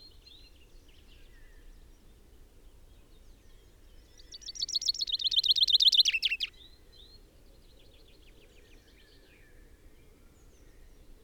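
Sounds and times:
common chaffinch Fringilla coelebs singing: 4.5s - 6.5s.

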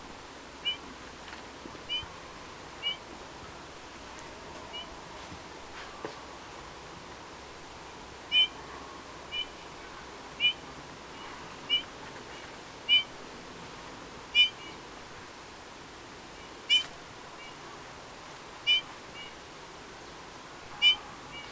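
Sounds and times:
faint steady background hiss: 0.0s - 21.5s
Eurasian bullfinch Pyrrhula pyrrhula giving soft whistled call notes: 1.9s - 2.1s, 2.8s - 3.0s, 8.3s - 8.6s, 9.3s - 9.5s, 10.4s - 10.6s, 11.7s - 11.9s, 12.9s - 13.1s, 14.4s - 14.8s, 16.7s - 17.6s, 18.7s - 19.4s, 20.8s - 21.5s.

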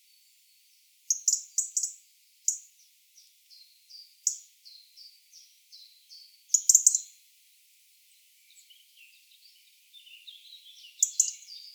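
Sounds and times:
European robin Erithacus rubecula singing: 1.1s - 7.1s, 8.5s - 11.7s.

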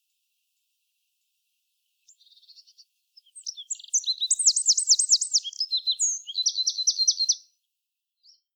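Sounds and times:
Eurasian wren singing, Troglodytes troglodytes: 2.0s - 7.5s, 8.2s - 8.5s.

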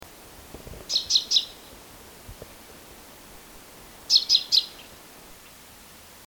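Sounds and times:
low background hiss: 0.0s - 6.2s
common chaffinch Fringilla coelebs calls: 0.9s - 1.7s, 4.1s - 5.6s.

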